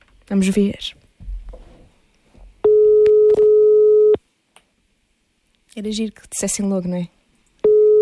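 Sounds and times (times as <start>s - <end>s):
speech: 0.3s - 1.0s, 5.8s - 7.2s
mobile phone ringing tone over the line: 2.6s - 4.2s, 7.6s - 7.9s.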